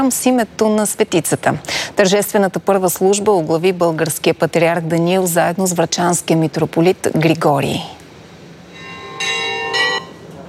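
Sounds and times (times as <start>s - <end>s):
speech: 0.0s - 8.0s
church bells ringing joyfully: 8.7s - 10.2s.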